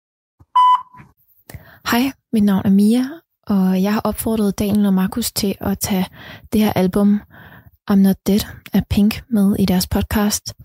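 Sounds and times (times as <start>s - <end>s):
loud steady electronic answering machine beep: 0.5s - 1.0s
speech: 1.9s - 10.6s.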